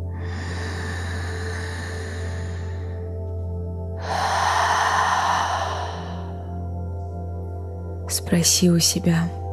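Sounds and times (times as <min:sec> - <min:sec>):
slow breathing during a guided breathing exercise: 0:00.0 - 0:07.0
speech: 0:08.2 - 0:09.4.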